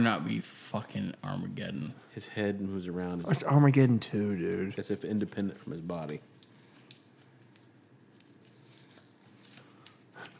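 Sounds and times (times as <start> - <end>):
speech: 0.0 - 6.3
crumpled paper slip being unfolded: 4.9 - 10.3.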